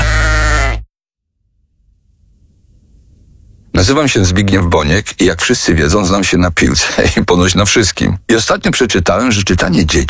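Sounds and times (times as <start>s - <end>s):
sheep bleating: 0.0s - 0.9s
speech: 3.8s - 10.0s.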